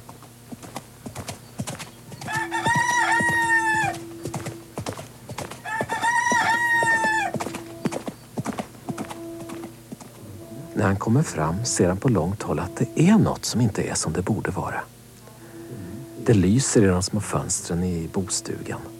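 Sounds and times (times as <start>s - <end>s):
stallion hooves clip-clopping on forest paths: 0.0s - 10.9s
rooster carried under a man's arm crowing: 2.1s - 8.2s, 8.9s - 11.6s
speech: 10.9s - 15.0s, 16.2s - 18.9s.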